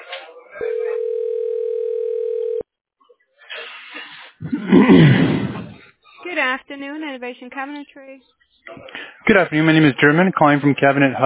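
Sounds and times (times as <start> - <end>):
telephone dialing tone: 0.6 - 2.6
speech: 4.8 - 5.4, 6.8 - 11.2.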